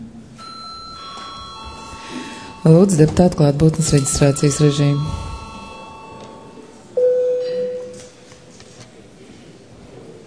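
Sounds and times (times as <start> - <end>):
faint room hum: 0.0 - 10.2
electronic parliament chamber bell with two-tone chime: 0.4 - 8.0
speech: 2.6 - 5.2.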